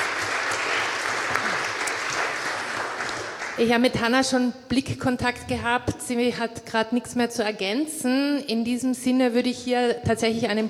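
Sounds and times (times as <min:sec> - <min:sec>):
audience applause: 0:00.0 - 0:03.6
speech: 0:03.6 - 0:10.6.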